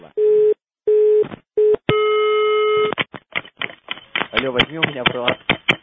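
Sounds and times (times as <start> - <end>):
telephone busy tone after a call is hung up: 0.2 - 3.0
speech: 4.4 - 5.6.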